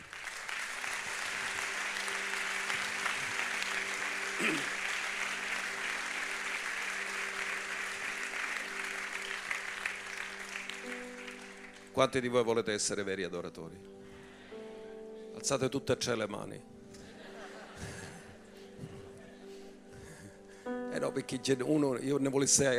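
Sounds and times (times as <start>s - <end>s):
audience at a worship service applauding: 0.0s - 12.0s
speech: 12.0s - 14.0s, 15.4s - 16.8s, 21.0s - 22.7s
laughter: 17.0s - 19.6s.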